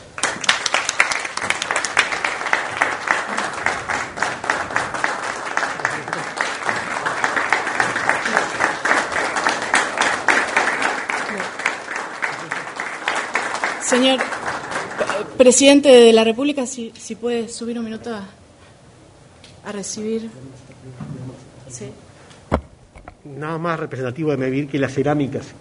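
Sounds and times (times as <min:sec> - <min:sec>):
large audience clapping in sustained applause: 0:00.0 - 0:15.6
speech: 0:15.4 - 0:18.4, 0:19.7 - 0:21.1, 0:21.7 - 0:22.0, 0:23.3 - 0:25.5.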